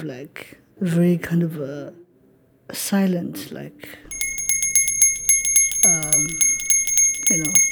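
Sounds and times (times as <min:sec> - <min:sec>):
speech: 0:00.0 - 0:02.0, 0:02.7 - 0:04.1, 0:05.8 - 0:06.5, 0:07.3 - 0:07.7
high metallic bell-like ringing in a rhythmic musical opening: 0:04.1 - 0:07.7
rapid ticking pulse: 0:04.1 - 0:07.7.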